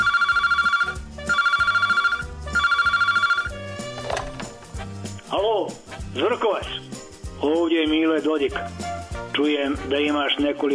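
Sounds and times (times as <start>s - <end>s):
telephone ringing with bright trilling bursts: 0.0s - 4.4s
busy musical backing: 0.8s - 10.7s
speech: 5.6s - 6.8s, 7.4s - 10.7s.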